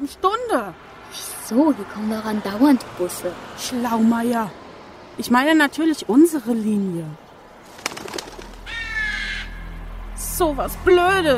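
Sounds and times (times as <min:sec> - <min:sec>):
speech: 0:00.0 - 0:00.9, 0:01.5 - 0:04.6, 0:05.2 - 0:07.2, 0:10.4 - 0:11.3
faint constant noise: 0:00.0 - 0:11.3
bird calling outdoors near a bus stop: 0:07.8 - 0:09.9.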